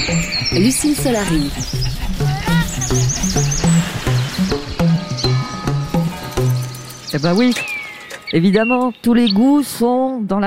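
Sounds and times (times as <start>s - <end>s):
steady rhythmic low thumping background: 0.0s - 7.5s
bird singing repeated high chirps: 0.0s - 9.8s
speech: 0.5s - 1.9s, 2.9s - 3.7s, 7.2s - 7.7s, 8.3s - 10.4s.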